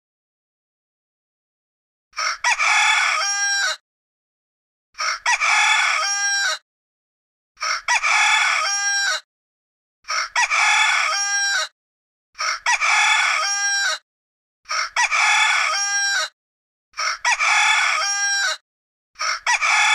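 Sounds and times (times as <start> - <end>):
rooster alarm sound: 2.2 - 3.8, 5.0 - 6.6, 7.6 - 9.2, 10.1 - 11.7, 12.4 - 14.0, 14.7 - 16.4, 17.0 - 18.6, 19.2 - 19.9.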